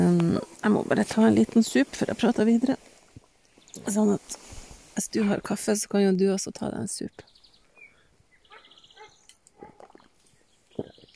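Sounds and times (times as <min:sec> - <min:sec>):
speech: 0:00.4 - 0:03.0, 0:03.8 - 0:07.3
dog barking in the neighbourhood: 0:08.5 - 0:09.8.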